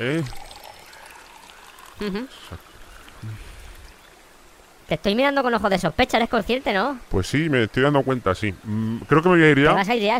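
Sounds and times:
speech: 0.0 - 0.4, 2.0 - 3.5, 4.9 - 10.1
water pouring while collecting water: 0.0 - 4.6.

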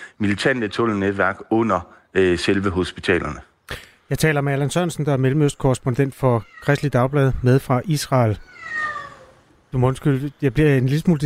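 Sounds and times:
speech: 0.2 - 8.8, 9.7 - 11.2
cat meowing in the background: 6.3 - 7.1, 8.2 - 9.7.

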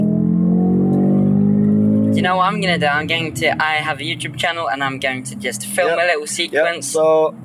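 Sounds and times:
car engine droning inside the cabin of a car being tested: 0.0 - 7.4
speech: 2.2 - 7.4.

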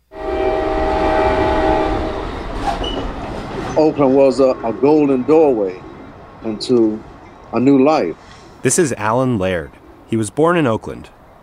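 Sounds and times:
train horn blaring: 0.0 - 3.2
train rumbling past: 0.0 - 11.4
heavy clatter of train cars: 1.3 - 7.7
speech: 3.8 - 11.4.

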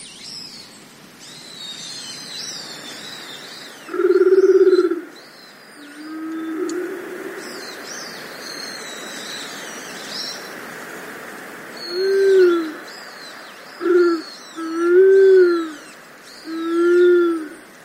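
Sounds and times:
small birds chirping and twittering: 0.0 - 17.8
Japanese wood pigeon cooing: 3.9 - 5.1, 5.8 - 7.4, 11.9 - 12.8, 13.8 - 15.8, 16.5 - 17.6.

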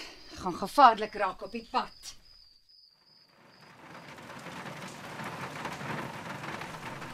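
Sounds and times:
speech: 0.4 - 2.2
heavy pouring rain during a storm: 3.3 - 7.1.

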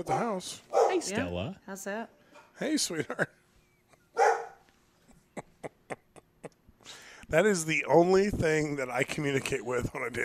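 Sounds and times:
dog barking: 0.0 - 1.1, 4.2 - 4.6
speech: 0.0 - 3.4, 7.3 - 10.2.

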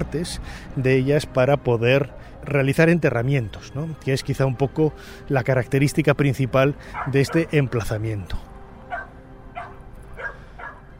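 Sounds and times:
speech: 0.0 - 8.5
semi-wild dogs barking on the slopes of the Theban mountain: 6.8 - 7.7, 8.8 - 10.9.

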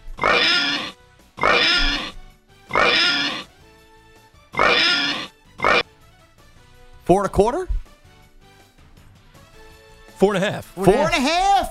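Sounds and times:
pig oinking with loud squealing snorts: 0.1 - 3.5, 4.6 - 5.9
speech: 7.1 - 7.8, 10.2 - 11.6.

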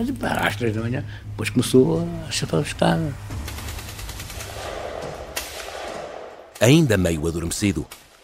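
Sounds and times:
speech: 0.0 - 3.5, 6.6 - 8.0
low rumbling background: 0.0 - 6.3
gunshots: 3.3 - 7.0.

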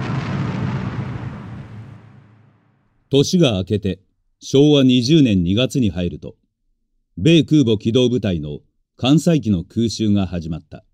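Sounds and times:
heavy rumbling explosion of a B-29 bomber breaking apart in the air: 0.0 - 3.1
speech: 3.1 - 6.4, 7.2 - 10.9.

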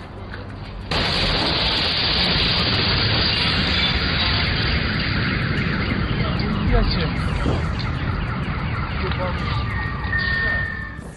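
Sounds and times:
sustained roaring wall of noise: 0.5 - 11.1
loud explosion blast: 0.9 - 11.1
car alarms wailing: 5.7 - 11.1.

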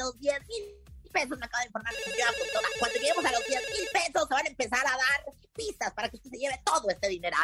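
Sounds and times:
speech: 0.1 - 7.4
man talking quickly: 1.2 - 7.4
telephone ringtone for an incoming call: 1.9 - 4.1.

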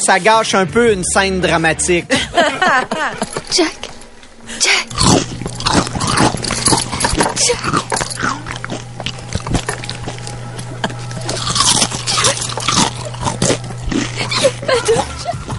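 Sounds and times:
speech: 0.0 - 3.9, 4.5 - 6.3, 7.4 - 8.4
laughter: 2.0 - 4.6, 10.5 - 11.4, 12.0 - 15.5
faint steady hum: 2.1 - 15.5
person crunching food while eating: 3.1 - 15.5.

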